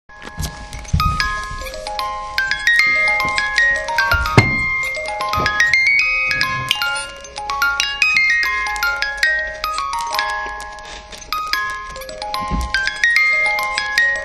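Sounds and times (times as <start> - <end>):
music box playing: 0.1 - 14.2.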